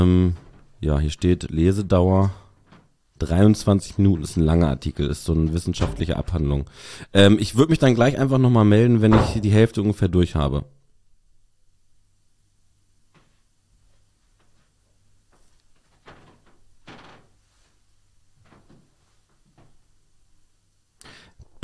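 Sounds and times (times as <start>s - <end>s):
faint wooden creaks: 0.0s - 1.4s, 2.3s - 4.5s, 13.1s - 17.8s, 18.4s - 19.8s
speech: 0.0s - 2.4s, 3.2s - 10.8s.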